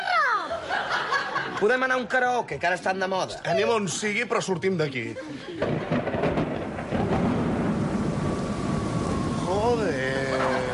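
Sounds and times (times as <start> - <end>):
laughter: 0.4 - 2.0, 4.7 - 6.3, 10.0 - 10.7
speech: 1.6 - 6.0
low rumbling: 5.6 - 10.7
steady rain: 5.6 - 10.7.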